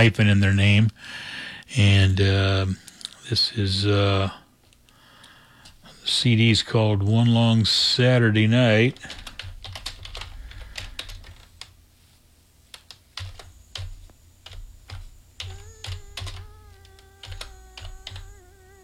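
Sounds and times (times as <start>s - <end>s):
speech: 0.0s - 4.4s, 6.1s - 9.2s
slow typing on a computer keyboard: 9.0s - 11.7s, 12.7s - 18.4s
cat meowing in a drawn-out wavering call: 15.4s - 18.8s.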